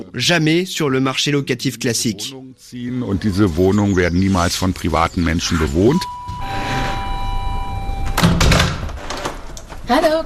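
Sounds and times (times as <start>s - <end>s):
speech: 0.2s - 6.2s, 9.9s - 10.1s
apartment door electronic buzzer: 6.1s - 9.3s
apartment door swinging open: 6.2s - 9.8s.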